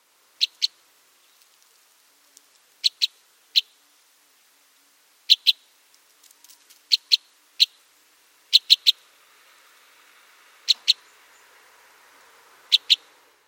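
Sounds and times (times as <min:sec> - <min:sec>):
White-winged Crossbill Loxia leucoptera calling: 0:00.4 - 0:01.4, 0:02.8 - 0:03.8, 0:05.3 - 0:05.7, 0:06.4 - 0:07.8, 0:08.5 - 0:09.1, 0:10.6 - 0:11.6, 0:12.6 - 0:13.3.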